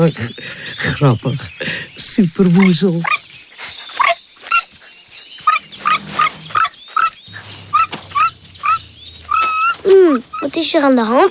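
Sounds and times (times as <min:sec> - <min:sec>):
speech: 0:00.0 - 0:03.2, 0:10.7 - 0:11.3
small dog whimpering: 0:02.6 - 0:03.2, 0:03.9 - 0:04.8, 0:05.4 - 0:10.7
small dog yapping: 0:04.0 - 0:04.7, 0:05.4 - 0:10.5.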